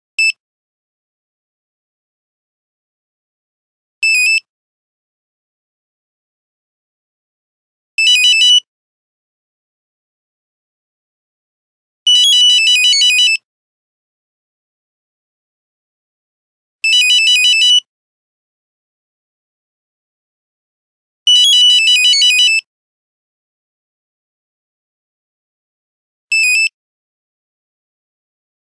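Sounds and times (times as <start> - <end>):
Nokia phone buzzer ringtone: 8.0 - 8.7, 12.1 - 13.4, 16.8 - 17.9, 21.3 - 22.7, 26.3 - 26.8.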